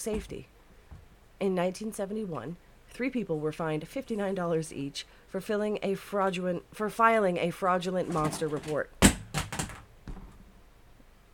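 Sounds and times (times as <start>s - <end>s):
speech: 0.0s - 0.6s, 1.4s - 9.0s
small objects knocked off a shelf by a cat thudding onto a hard surface: 8.1s - 10.4s.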